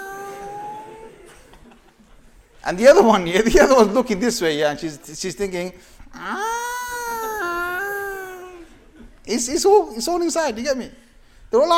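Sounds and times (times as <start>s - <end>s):
person imitating a cat with a drawn-out whiny meow: 0.0s - 1.4s, 6.2s - 8.7s
laughter: 0.0s - 4.0s, 6.3s - 10.1s
speech: 2.6s - 6.5s, 9.3s - 11.7s.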